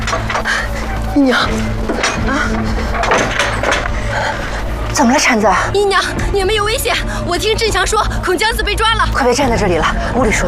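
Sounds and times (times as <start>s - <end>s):
wooden door being pulled open: 0.0s - 5.0s
steady low rumble: 0.0s - 10.4s
speech: 1.2s - 10.4s.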